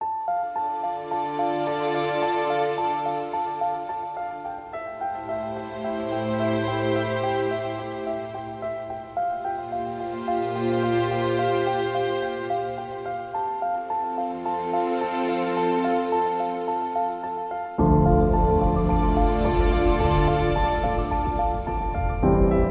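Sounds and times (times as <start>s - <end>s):
political documentary background music: 0.3s - 22.7s.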